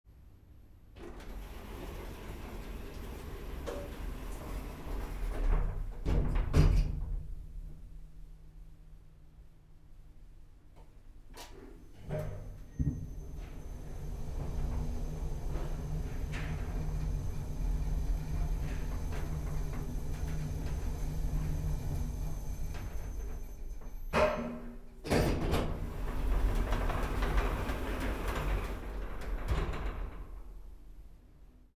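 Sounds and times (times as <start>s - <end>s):
elevator going down: 1.0s - 6.6s, 11.8s - 30.9s.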